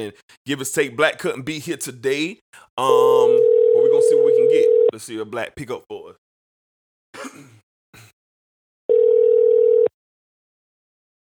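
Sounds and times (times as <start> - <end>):
speech: 0.0 - 6.0
single steady electronic phone ring tone: 3.1 - 4.9, 8.9 - 9.9.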